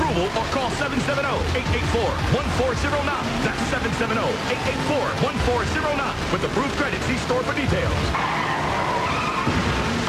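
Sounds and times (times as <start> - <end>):
speech: 0.2 - 8.4
car tires skidding in a car wreck: 2.0 - 10.0.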